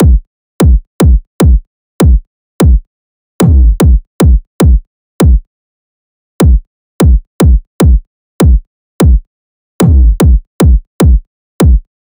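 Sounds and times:
kick drum loop: 0.0 - 2.8, 3.4 - 5.4, 6.4 - 9.2, 9.8 - 11.9.

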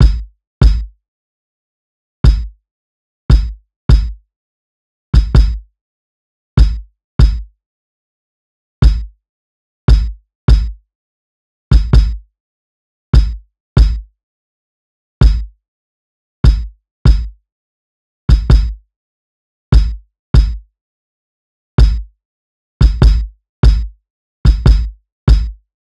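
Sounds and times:
kick drum loop: 0.0 - 0.9, 2.2 - 2.5, 3.3 - 4.2, 5.2 - 5.7, 6.6 - 7.5, 8.8 - 9.1, 9.9 - 10.8, 11.7 - 12.2, 13.2 - 14.1, 15.2 - 15.5, 16.4 - 17.4, 18.3 - 18.8, 19.7 - 20.6, 21.8 - 22.1, 22.8 - 23.9, 24.5 - 25.6.

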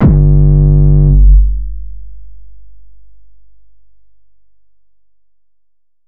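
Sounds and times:
808 bass one-shot in G: 0.0 - 2.0.

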